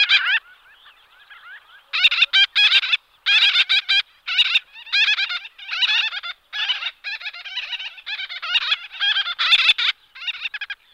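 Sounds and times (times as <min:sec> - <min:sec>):
gull-billed tern giving harsh nasal notes: 0:00.0 - 0:10.8.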